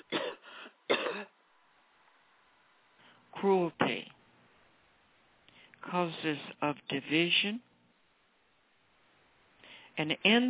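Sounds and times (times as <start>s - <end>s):
person coughing: 0.0s - 1.3s
throat clearing: 0.0s - 1.3s
speech: 3.4s - 4.0s, 5.9s - 7.7s, 10.0s - 10.4s.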